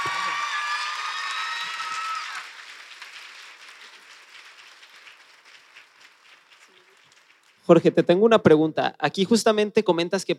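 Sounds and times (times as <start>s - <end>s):
audience applause: 0.0s - 7.6s
speech: 7.7s - 10.3s.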